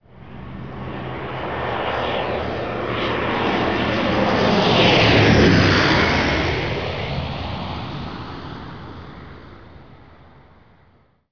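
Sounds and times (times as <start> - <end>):
jet flying over: 0.0 - 11.0.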